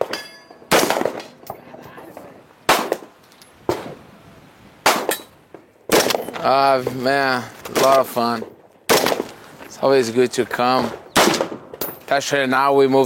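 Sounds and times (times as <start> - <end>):
gunshots from an AR rifle, a 9mm pistol and a .22 rifle: 0.0 - 1.4, 2.7 - 3.1, 4.8 - 5.2, 5.9 - 6.4, 8.9 - 9.3, 11.1 - 11.8
speech: 6.4 - 8.5, 9.8 - 11.0, 12.1 - 13.0.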